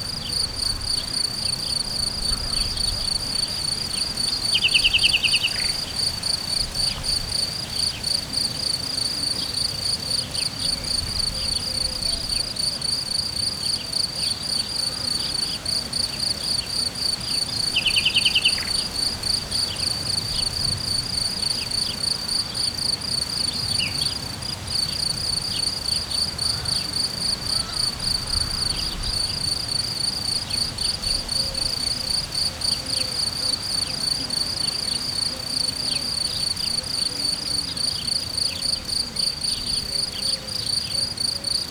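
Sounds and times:
cricket chirping in nature: 0.0 - 41.6
bird chirping pleasantly in Hortobágy: 17.7 - 18.8.

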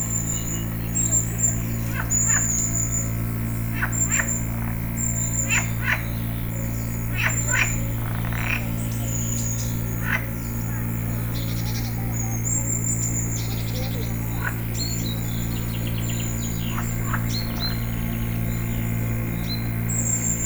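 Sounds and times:
frog in Tiszababolna: 0.3 - 18.8
frog rattling croak in Tiszababolna: 1.2 - 11.6, 13.6 - 19.7.

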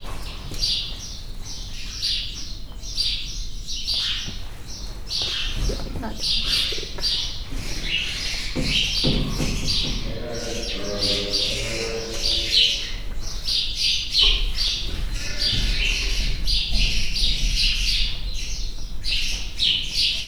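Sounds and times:
house sparrows in a stable in Hortobágy National Park: 0.0 - 20.2
rosy pelicans in a stable in Hortobágy National Park: 3.9 - 20.2.

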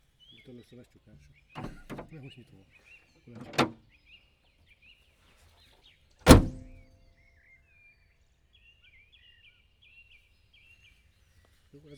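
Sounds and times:
Opel car hood opening automatically: 1.6 - 2.1, 3.4 - 3.8, 6.3 - 6.8.

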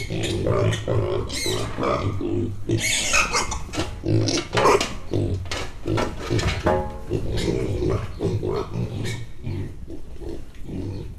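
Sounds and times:
ten-week-old Mangalica piglets grunting: 0.0 - 11.1.

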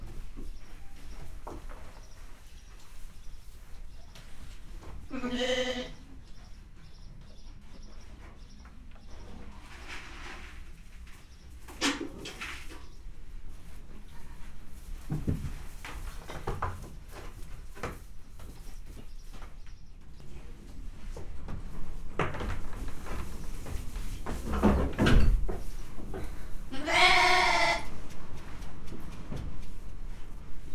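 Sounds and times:
puszta wind in Hortobágy National Park: 0.0 - 30.7
domestic goat in Hortobágy National Park: 26.2 - 28.1.

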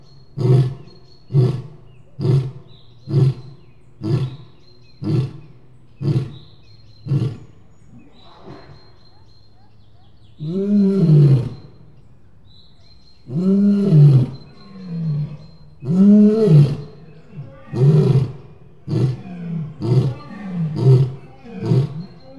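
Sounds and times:
lion roaring: 0.4 - 6.4, 7.0 - 7.6, 10.4 - 11.7, 13.2 - 22.3.

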